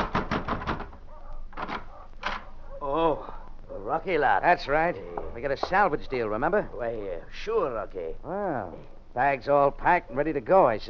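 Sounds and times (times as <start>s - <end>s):
hard knocking on a hotel room door: 0.0s - 1.0s
speech: 3.9s - 10.8s.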